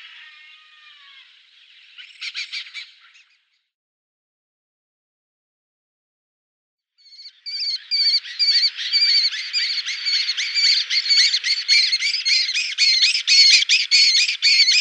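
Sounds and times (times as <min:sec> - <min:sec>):
lesser kestrel giving harsh rasping chattering calls: 0:07.5 - 0:14.8.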